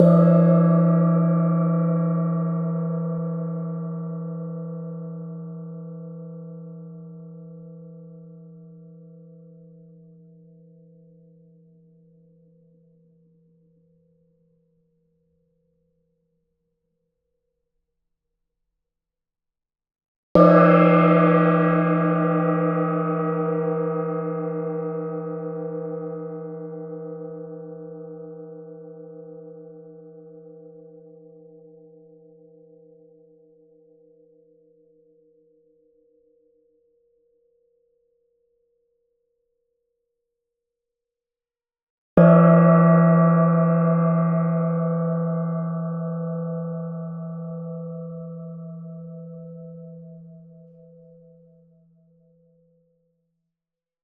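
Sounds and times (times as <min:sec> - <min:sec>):
small gong: 0:00.0 - 0:12.6, 0:20.4 - 0:36.9, 0:42.2 - 0:52.6.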